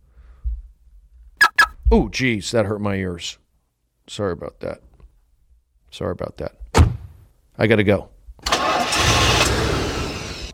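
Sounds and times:
speech: 0:01.9 - 0:03.4, 0:04.1 - 0:04.9, 0:05.9 - 0:06.6, 0:07.6 - 0:08.6
car engine starting after failing to: 0:08.5 - 0:10.5.

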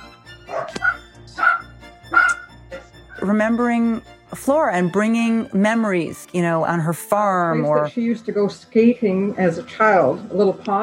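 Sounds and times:
dachshunds barking: 0:00.4 - 0:02.9
speech: 0:03.2 - 0:10.8.

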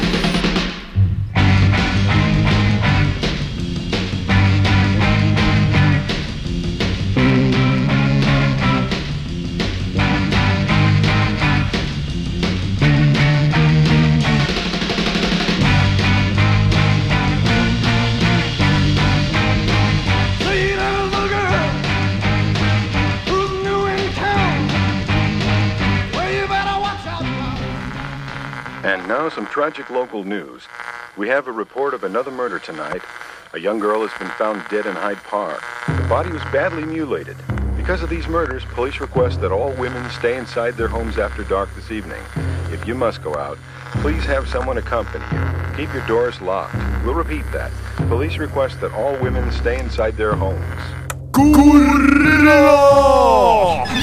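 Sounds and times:
pounding drums: 0:00.0 - 0:04.8
loud driving rock song with full band: 0:00.0 - 0:28.5
raw lead vocal: 0:19.5 - 0:22.0, 0:23.2 - 0:24.7, 0:26.1 - 0:28.0, 0:51.4 - 0:54.0
speech: 0:29.6 - 0:54.0.

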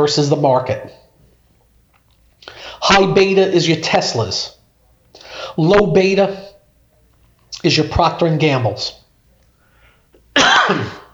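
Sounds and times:
speech: 0:00.0 - 0:01.0, 0:02.4 - 0:04.6, 0:05.4 - 0:06.5, 0:07.5 - 0:09.0, 0:10.4 - 0:11.0
harsh cough: 0:10.4 - 0:11.1.

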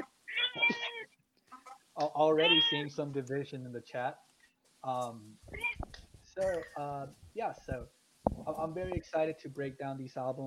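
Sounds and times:
female cat chirping: 0:00.3 - 0:01.1, 0:02.4 - 0:02.8, 0:05.5 - 0:05.8
female cat meowing: 0:00.3 - 0:01.1, 0:02.4 - 0:02.9, 0:05.6 - 0:05.8
speech: 0:02.2 - 0:05.7, 0:06.4 - 0:10.4.

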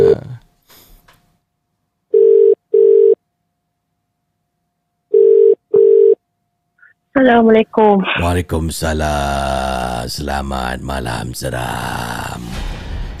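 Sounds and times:
ringback tone of an outgoing telephone call: 0:02.1 - 0:03.2, 0:05.1 - 0:06.2
speech: 0:07.2 - 0:12.6.

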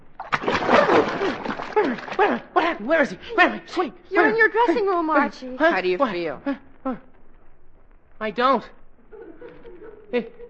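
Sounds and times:
bucket of water dumped on someone: 0:00.0 - 0:02.4
speech: 0:01.2 - 0:07.1, 0:08.2 - 0:08.8, 0:10.1 - 0:10.4
laughter: 0:09.1 - 0:10.4.

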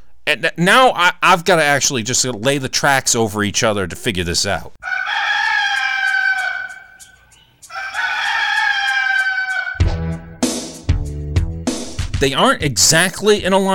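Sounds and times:
speech: 0:00.3 - 0:05.3, 0:12.2 - 0:13.7
rooster crowing: 0:04.8 - 0:10.0.

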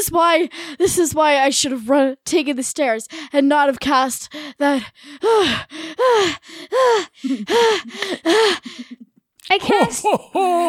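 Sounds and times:
speech: 0:00.0 - 0:10.6
heavy panting breaths: 0:04.3 - 0:09.0.

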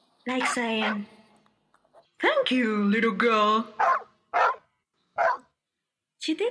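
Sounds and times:
speech: 0:00.2 - 0:01.2, 0:02.2 - 0:04.1, 0:06.2 - 0:06.4
dog barking: 0:00.4 - 0:01.1, 0:03.8 - 0:05.6.

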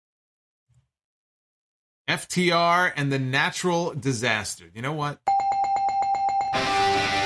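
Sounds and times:
speech: 0:02.1 - 0:05.3, 0:06.5 - 0:06.8
bright bell sound effect ringing rapidly: 0:05.3 - 0:06.9.

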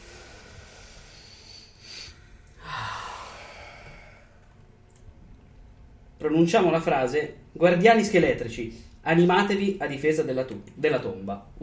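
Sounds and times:
longer airy exhale: 0:00.0 - 0:04.5
slow deep breath drawn in: 0:00.0 - 0:04.6
faint hiss: 0:00.0 - 0:11.6
speech: 0:06.2 - 0:11.6.

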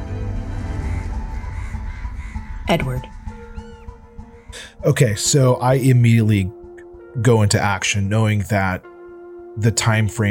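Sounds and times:
flock of many birds cawing: 0:00.2 - 0:05.3
speech: 0:02.7 - 0:03.2, 0:04.8 - 0:06.6, 0:07.2 - 0:08.9, 0:09.6 - 0:10.3.

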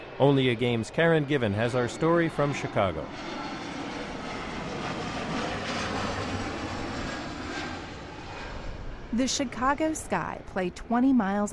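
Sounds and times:
airplane flying overhead on landing path near O'Hare International Airport: 0:00.0 - 0:11.5
speech: 0:00.2 - 0:03.4, 0:09.1 - 0:11.5.

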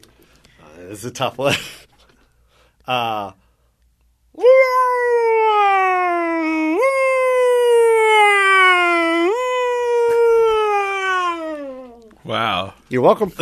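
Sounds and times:
speech: 0:00.9 - 0:01.9, 0:02.9 - 0:03.4, 0:12.3 - 0:13.3
voice imitating a US ambulance siren from Los Angeles: 0:04.4 - 0:12.1.

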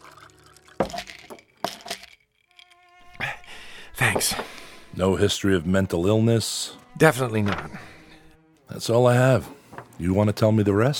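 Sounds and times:
water poured into a glass: 0:00.0 - 0:02.7
speech: 0:04.0 - 0:07.9, 0:08.7 - 0:10.9.

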